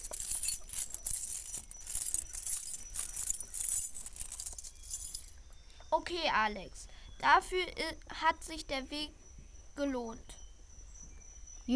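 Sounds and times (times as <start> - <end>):
pile of coins in a treasure chest clinking: 0.0 - 5.4
speech: 6.0 - 9.2, 9.8 - 10.3.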